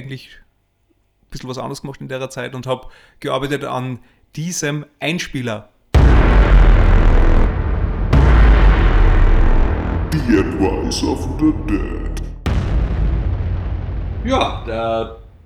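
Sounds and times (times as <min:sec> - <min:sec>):
speech: 0:00.0 - 0:00.5, 0:01.3 - 0:06.7, 0:10.1 - 0:12.1, 0:14.2 - 0:15.4
booming explosion sound effect in a produced jingle: 0:06.0 - 0:15.4
crackling, rumbling debris: 0:06.0 - 0:15.4.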